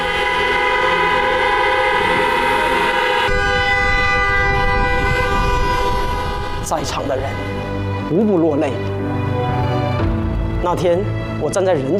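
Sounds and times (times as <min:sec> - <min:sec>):
many car horns honking in procession: 0:00.0 - 0:08.1
speech: 0:06.7 - 0:09.4, 0:10.6 - 0:11.9.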